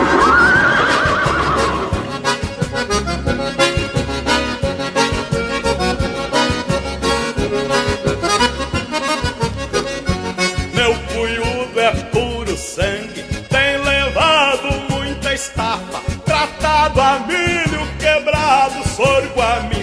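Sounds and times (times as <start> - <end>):
horse whinnying: 0.0 - 2.7
rhythmic music with a steady driving beat: 0.0 - 19.8.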